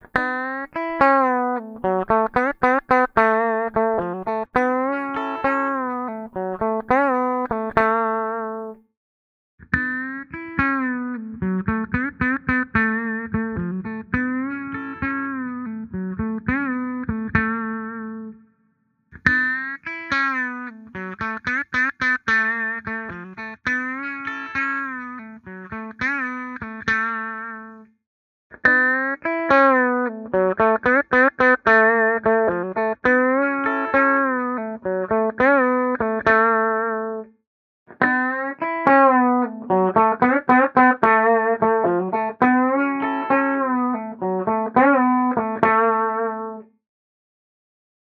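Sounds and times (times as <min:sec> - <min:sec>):
clean electric guitar: 0:00.0 - 0:08.8, 0:09.7 - 0:18.4, 0:19.2 - 0:27.8, 0:28.5 - 0:37.3, 0:37.9 - 0:46.7.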